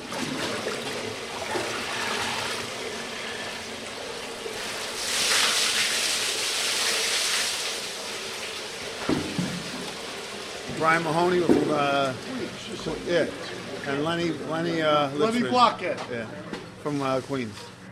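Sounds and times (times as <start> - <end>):
icy water pouring and splashing over body: 0.0 - 12.5
speech: 10.8 - 17.7.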